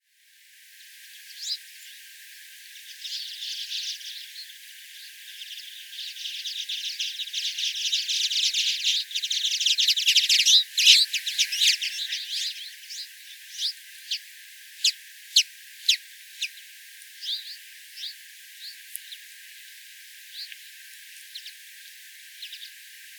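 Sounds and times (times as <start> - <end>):
male twite Carduelis flavirostris singing: 2.9 - 19.2, 22.4 - 22.8.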